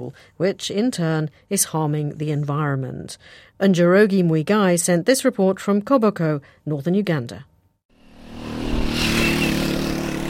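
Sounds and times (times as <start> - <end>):
speech: 0.0 - 7.5
boda boda motorbike taxi engine riding past in Koboko, northern Uganda: 8.0 - 10.2.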